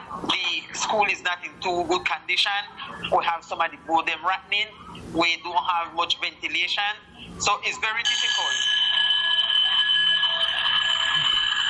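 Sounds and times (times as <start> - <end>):
speech: 0.8 - 8.8
electric school bell ringing: 8.0 - 11.6.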